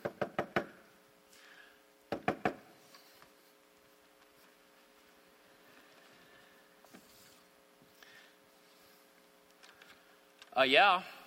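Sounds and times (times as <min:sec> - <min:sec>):
knocking on a door: 0:00.0 - 0:00.7, 0:02.1 - 0:02.6.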